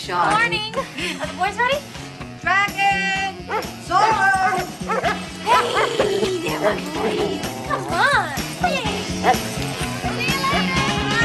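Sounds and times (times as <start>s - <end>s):
speech: 0.0s - 5.0s, 5.6s - 8.4s
two Doberman dogs barking and yipping excitedly: 3.4s - 11.1s
Doberman dogs whimpering: 3.5s - 8.1s, 9.2s - 9.5s.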